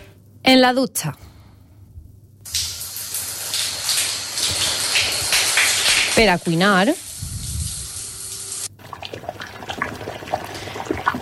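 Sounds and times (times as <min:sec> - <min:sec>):
speech: 0:00.5 - 0:01.3, 0:06.2 - 0:07.0
tap running: 0:02.5 - 0:06.5
water pouring, splashing and gurgling: 0:02.5 - 0:11.1.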